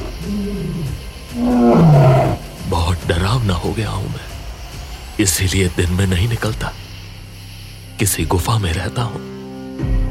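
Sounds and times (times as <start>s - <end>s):
big cat roaring, tiger or lion: 0.0s - 2.6s
speech: 3.5s - 4.4s, 5.2s - 6.8s, 8.0s - 10.0s.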